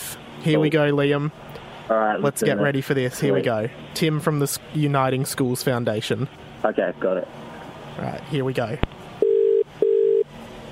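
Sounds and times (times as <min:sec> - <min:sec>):
speech: 0:00.4 - 0:08.9
telephone ringing tone on the line: 0:09.2 - 0:10.3.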